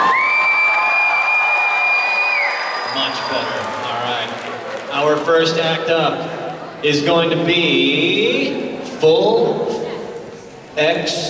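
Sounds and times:
shrill sustained whoop: 0:00.0 - 0:03.8
audience cheering at a cosplay show: 0:00.0 - 0:06.2
speech: 0:05.3 - 0:09.7, 0:10.8 - 0:11.2.

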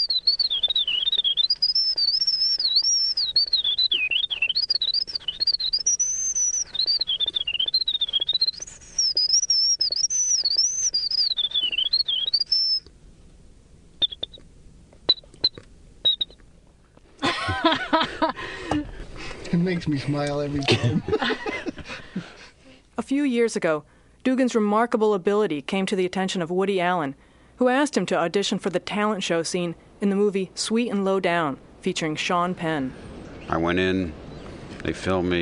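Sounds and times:
man whistling imitation of winter wren song: 0:00.0 - 0:12.9, 0:14.0 - 0:14.4, 0:15.1 - 0:16.4
short chirps: 0:00.0 - 0:12.9, 0:14.0 - 0:14.4
laughter: 0:17.2 - 0:18.9, 0:20.6 - 0:22.5
speech: 0:19.7 - 0:21.5, 0:23.1 - 0:34.2, 0:34.8 - 0:35.4.

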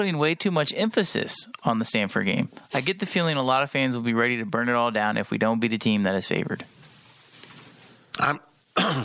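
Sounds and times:
speech: 0:00.0 - 0:06.8, 0:08.2 - 0:09.0
person clearing throat: 0:08.2 - 0:09.0
person coughing: 0:08.2 - 0:09.0.

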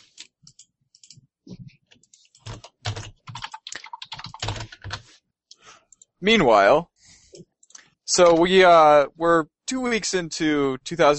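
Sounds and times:
typing on a computer keyboard: 0:00.0 - 0:01.2, 0:02.0 - 0:05.1
speech: 0:06.2 - 0:06.9, 0:08.2 - 0:11.1.

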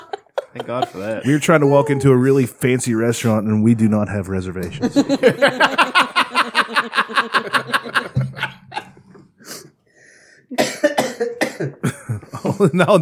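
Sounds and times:
laughter: 0:00.0 - 0:01.9, 0:04.8 - 0:09.2, 0:11.8 - 0:13.0
speech: 0:00.5 - 0:08.5, 0:12.6 - 0:13.0
person coughing: 0:10.5 - 0:12.6.

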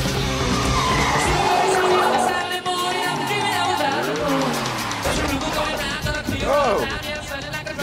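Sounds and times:
dense busy chaotic driving scene backdrop: 0:00.0 - 0:07.8
tires squealing as a hotwired car skids: 0:00.1 - 0:06.2
hotwired car engine revving: 0:00.1 - 0:06.4.

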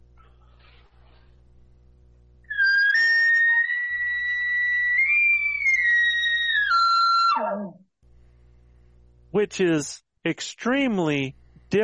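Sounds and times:
faint low hum: 0:00.0 - 0:06.3, 0:06.9 - 0:11.8
hunter blowing a location bugle on a latex mouth call: 0:02.5 - 0:07.7
speech: 0:09.4 - 0:11.8.

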